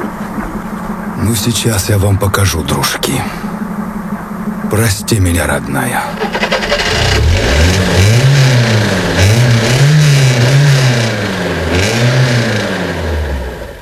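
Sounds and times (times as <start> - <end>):
speech: 1.2 - 3.6, 4.7 - 6.5
car engine revving hard while stuck in a shallow ditch: 6.0 - 13.8.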